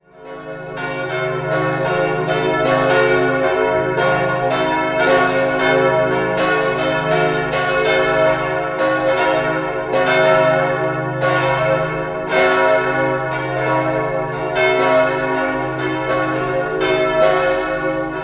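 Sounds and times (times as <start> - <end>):
Protestant church bells ringing in Bonn Oberkassel: 0.0 - 18.2.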